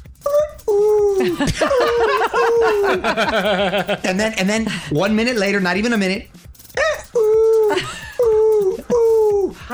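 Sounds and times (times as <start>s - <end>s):
person imitating a shrill bird call: 0.3s - 1.3s, 6.8s - 9.5s
laughter: 1.2s - 4.8s, 6.8s - 9.6s
speech: 1.2s - 6.4s.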